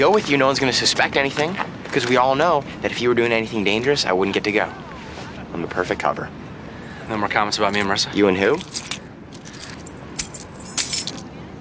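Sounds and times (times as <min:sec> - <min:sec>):
speech: 0:00.0 - 0:04.9, 0:05.6 - 0:06.4, 0:07.1 - 0:08.9
low rumble: 0:00.0 - 0:11.6
thrown keys jangling in the air: 0:08.5 - 0:11.3.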